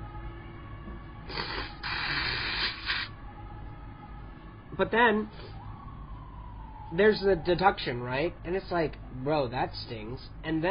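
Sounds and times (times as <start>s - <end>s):
person blowing nose: 1.3s - 3.1s
speech: 4.8s - 5.5s, 6.9s - 10.6s.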